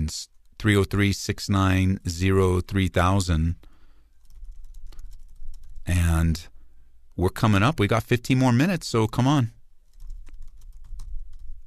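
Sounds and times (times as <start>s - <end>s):
speech: 0.1s - 3.7s, 5.9s - 6.5s, 7.2s - 9.6s
keyboard typing: 4.2s - 5.9s, 9.8s - 11.5s.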